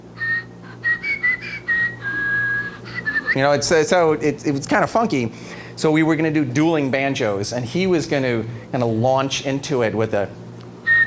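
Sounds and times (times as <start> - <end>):
whistled tune: 0.2 - 3.7, 10.8 - 11.0
speech: 3.3 - 10.4.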